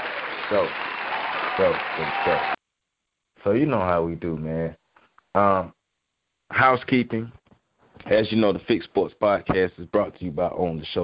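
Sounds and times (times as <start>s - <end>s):
applause for a guest on a sports talk show: 0.0s - 2.6s
speech: 0.5s - 0.8s, 1.6s - 2.6s, 3.4s - 5.8s, 6.5s - 7.4s, 8.0s - 11.0s.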